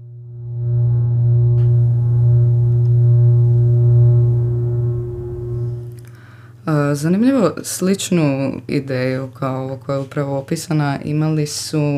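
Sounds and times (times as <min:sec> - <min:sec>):
early computer program sounding a low buzzy electronic tone through a loudspeaker: 0:00.0 - 0:06.1
speech: 0:07.0 - 0:11.9.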